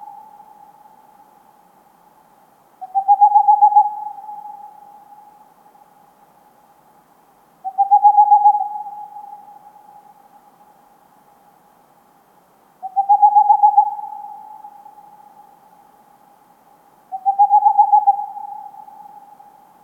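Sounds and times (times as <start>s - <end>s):
Tengmalm's owl pulsed hoots: 0.0s - 1.2s, 2.8s - 5.5s, 7.6s - 10.4s, 12.8s - 15.6s, 17.1s - 19.7s.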